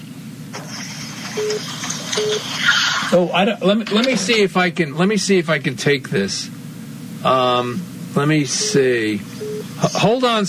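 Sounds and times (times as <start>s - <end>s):
low hum: 0.0s - 10.4s
phone beeping: 1.4s - 2.5s, 8.5s - 9.7s
speech: 1.4s - 6.6s, 7.2s - 10.4s.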